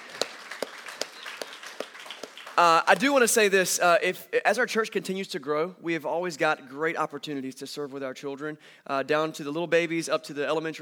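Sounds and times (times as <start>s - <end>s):
church congregation clapping in unison: 0.0s - 3.4s
speech: 2.6s - 10.8s.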